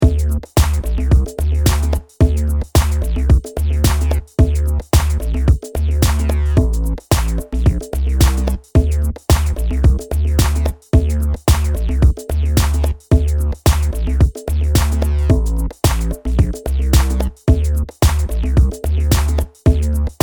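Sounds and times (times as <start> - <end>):
dance drums: 0.0 - 20.2
pulled clap: 0.6 - 2.1, 2.8 - 3.2, 3.8 - 4.3, 5.0 - 5.4, 6.0 - 8.6, 9.3 - 10.8, 11.5 - 12.0, 12.6 - 13.0, 13.7 - 14.2, 14.8 - 17.4, 18.0 - 20.2.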